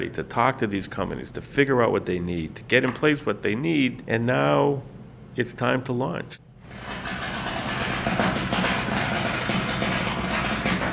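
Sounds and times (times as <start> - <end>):
speech: 0.0 - 6.9
steel being ground on a boat at a shipyard in Fairhaven: 6.6 - 10.9.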